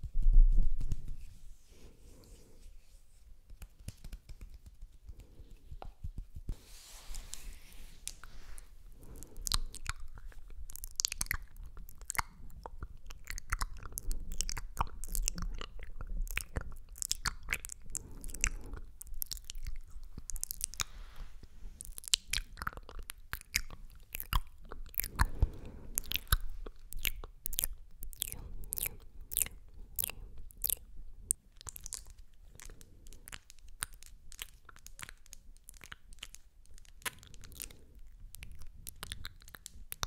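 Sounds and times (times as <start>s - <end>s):
slick oily hand rubbing: 0.0s - 9.4s
quiet wet mouth sounds: 7.3s - 40.0s.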